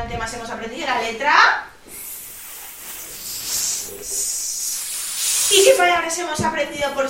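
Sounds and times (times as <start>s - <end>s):
speech: 0.1s - 1.7s, 5.5s - 7.0s
voice imitating a snake's hiss: 1.8s - 6.3s.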